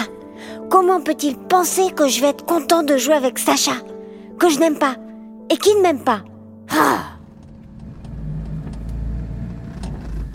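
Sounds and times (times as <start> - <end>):
speech: 0.7 - 7.1
car driving along and arriving at a house: 7.1 - 10.3
faint clicks and rattles: 7.2 - 10.3.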